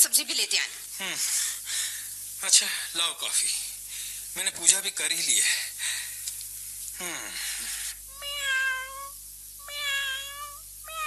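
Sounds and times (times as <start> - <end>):
speech: 0.0 - 1.5, 2.4 - 3.7, 4.4 - 5.7, 7.0 - 7.8
brief burst of hissy noise: 0.0 - 11.0
faint low hum: 0.0 - 11.0
cat meowing in a home: 8.1 - 11.0.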